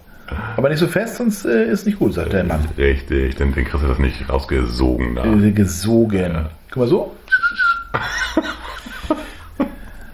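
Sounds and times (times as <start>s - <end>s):
speech: 0.6s - 8.5s
whistle from a tobacco pipe being drawn on: 7.3s - 7.9s
person chuckling: 7.3s - 9.9s.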